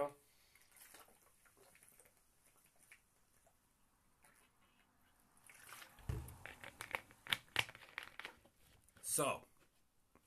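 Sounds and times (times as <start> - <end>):
soft thump: 6.0 - 6.4
speech: 9.2 - 9.5.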